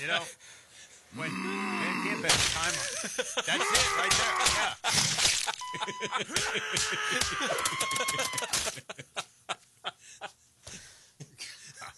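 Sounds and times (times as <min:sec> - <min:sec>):
speech: 0:00.0 - 0:09.2
equipment being smashed: 0:02.3 - 0:02.8, 0:04.0 - 0:05.6
laughter: 0:02.6 - 0:10.4.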